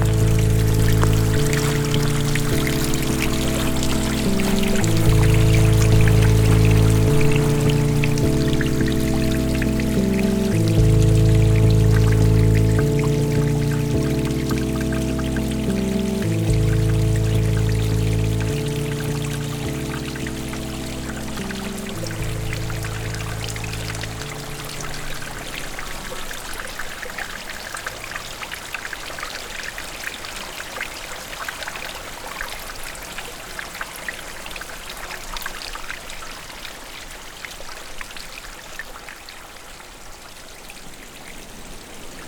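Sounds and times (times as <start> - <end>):
low sustained musical drone shifting chords: 0.0 - 26.6
water lapping and trickling in a damp wood: 0.0 - 42.2.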